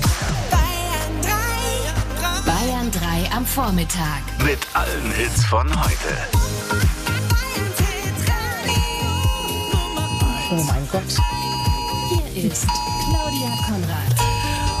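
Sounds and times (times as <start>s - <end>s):
music: 0.0s - 14.7s
speech: 3.4s - 6.9s, 10.5s - 11.5s, 12.4s - 14.3s
mobile phone emergency warning alert tone: 8.6s - 14.7s.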